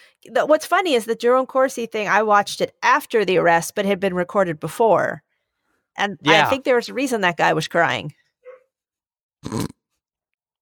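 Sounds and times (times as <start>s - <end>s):
speech: 0.2s - 5.3s, 6.0s - 8.2s, 9.4s - 9.7s
dog giving a short harsh bark or yelp: 8.4s - 8.7s.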